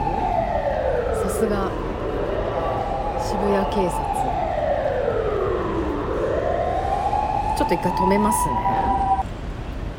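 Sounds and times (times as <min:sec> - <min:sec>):
ambulance siren in Shibuya passing outside: 0:00.0 - 0:09.2
rumble of traffic: 0:00.0 - 0:09.9
speech: 0:01.4 - 0:01.9, 0:03.3 - 0:04.2, 0:07.6 - 0:08.8.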